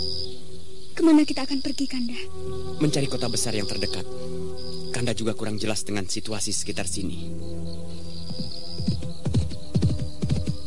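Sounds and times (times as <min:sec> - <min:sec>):
speech: 0:01.0 - 0:07.9
horse galloping fast on a village road: 0:08.3 - 0:10.6.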